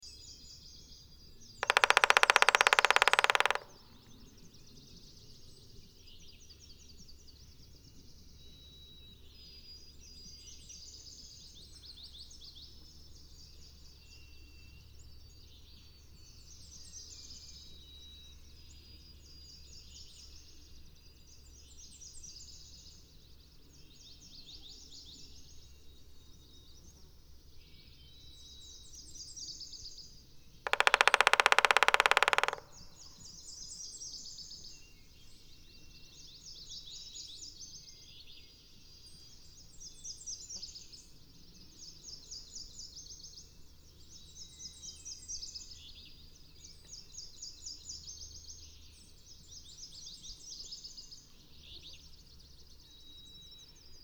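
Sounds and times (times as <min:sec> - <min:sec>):
Black-backed Woodpecker Picoides arcticus: 0:01.5 - 0:04.4, 0:30.6 - 0:34.0.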